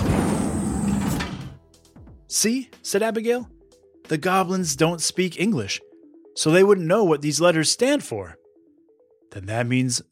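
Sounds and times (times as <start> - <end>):
huge heavy door sliding open with grinding rumble and creaking groan: 0.0 - 1.6
speech: 2.3 - 8.4, 9.3 - 10.0.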